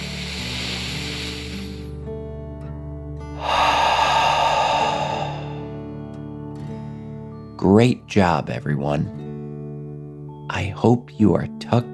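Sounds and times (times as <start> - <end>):
deep breath in and out: 0.0 - 1.9, 3.4 - 6.0
speech: 7.6 - 9.2, 10.5 - 11.9.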